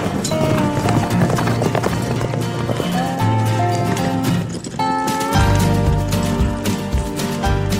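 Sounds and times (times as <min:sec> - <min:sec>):
horse hooves galloping across dirt in a rodeo arena: 0:00.0 - 0:07.7.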